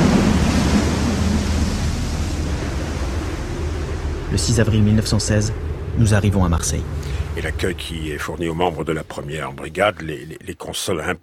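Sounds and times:
rough sea storm waves churning: 0.0s - 8.9s
speech: 4.3s - 11.2s.

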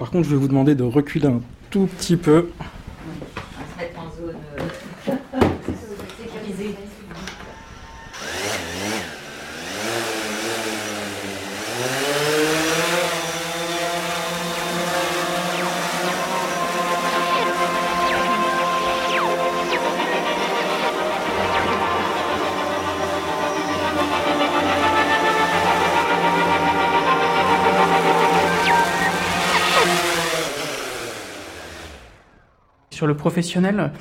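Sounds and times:
speech: 0.1s - 2.8s, 33.1s - 33.9s
small consumer camera drone propellers buzzing: 8.1s - 32.9s.

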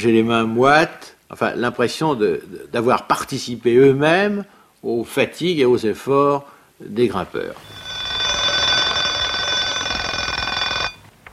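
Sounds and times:
speech: 0.0s - 7.8s
alarm clock ringing with a harsh metallic bell rattle: 7.6s - 11.0s.

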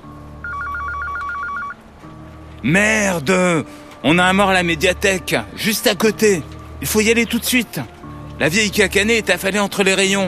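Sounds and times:
telephone ringing with a rapid electronic two-tone warbling trill: 0.4s - 1.8s
speech: 2.6s - 10.2s.

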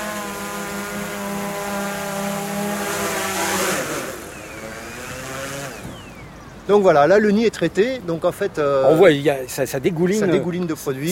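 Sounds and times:
insecticide-spraying drone motor buzzing while landing: 0.0s - 6.4s
speech: 6.7s - 11.1s.

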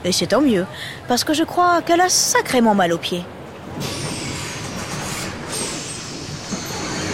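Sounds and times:
speech: 0.0s - 4.0s
bus pulling in at a stop in Montgomery: 0.0s - 7.1s
bus brake squeals: 3.8s - 7.1s.

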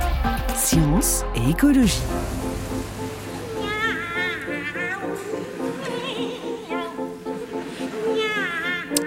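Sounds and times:
steady musical accompaniment: 0.0s - 9.0s
speech: 0.7s - 2.4s
two operatic sopranos singing meows in a duet: 3.4s - 9.0s.

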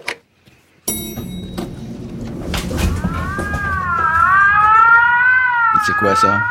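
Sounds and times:
siren wailing: 1.6s - 6.4s
speech: 6.0s - 6.4s.

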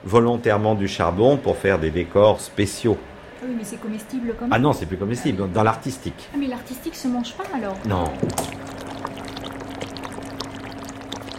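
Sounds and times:
speech: 0.0s - 8.7s
low hiss and hum: 0.0s - 11.3s
thick sugar syrup bubbling as it thickens: 7.2s - 11.3s.

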